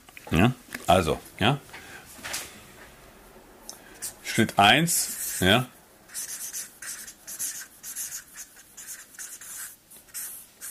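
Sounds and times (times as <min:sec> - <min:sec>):
speech: 0:00.3 - 0:01.8, 0:04.4 - 0:06.3
thick pen scratching across paper: 0:05.0 - 0:10.6.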